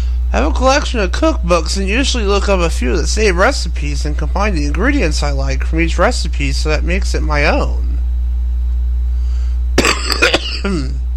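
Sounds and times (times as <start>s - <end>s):
steady low hum: 0.0s - 11.1s
speech: 0.3s - 7.9s
sharp coughs: 9.8s - 11.0s
throaty rasp as the throat clears: 9.8s - 11.0s.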